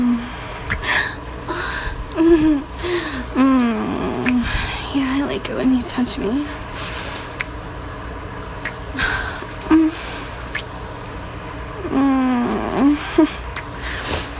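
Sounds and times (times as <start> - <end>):
person softly murmuring and moaning: 0.0 - 0.4, 1.5 - 5.0, 9.0 - 10.0, 11.8 - 13.5
shower water running: 0.0 - 14.3
speech: 2.2 - 2.7, 5.4 - 6.6.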